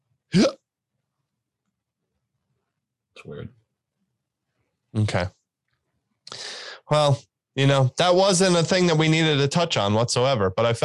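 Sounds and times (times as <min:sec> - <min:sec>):
speech: 0:00.3 - 0:00.6, 0:03.2 - 0:03.6, 0:04.9 - 0:05.4, 0:06.9 - 0:10.8
open-mouthed hiccup: 0:00.3 - 0:00.7.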